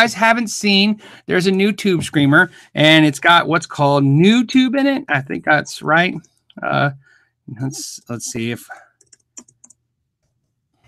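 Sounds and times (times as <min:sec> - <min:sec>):
speech: 0:00.0 - 0:08.8
typing on a computer keyboard: 0:09.0 - 0:09.8.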